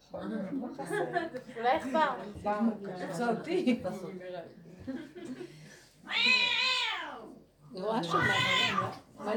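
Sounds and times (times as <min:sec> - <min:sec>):
speech: 0:00.1 - 0:06.7, 0:07.7 - 0:09.3
cat meowing at the window: 0:06.1 - 0:07.3, 0:08.1 - 0:09.0.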